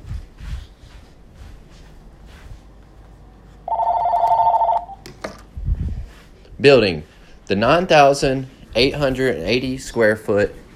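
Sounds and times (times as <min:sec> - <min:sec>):
phone ringing with a loud electronic trill: 0:03.7 - 0:05.0
speech: 0:06.6 - 0:10.6.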